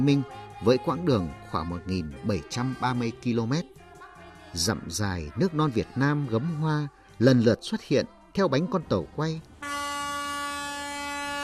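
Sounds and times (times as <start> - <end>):
speech: 0.0 - 3.8, 4.5 - 9.5
train horn sounding at railway station: 9.6 - 11.4.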